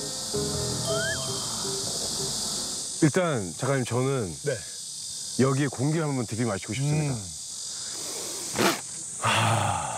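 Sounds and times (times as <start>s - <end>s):
cicadas buzzing in trees in summer: 0.0s - 9.9s
brief rising whistle-like note: 0.7s - 1.9s
speech: 3.0s - 4.7s, 5.4s - 7.4s.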